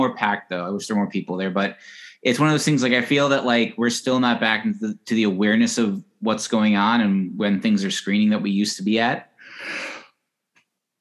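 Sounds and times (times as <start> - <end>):
speech: 0.0 - 9.9
person yawning: 9.4 - 10.1
soft breath: 9.4 - 10.2.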